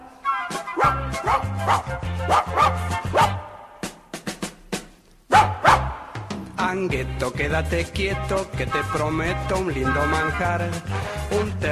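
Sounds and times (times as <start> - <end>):
small brown-haired dog barking furiously at passing people in a park: 0.8 - 3.5, 5.3 - 6.0
speech: 0.9 - 3.3, 6.7 - 11.6.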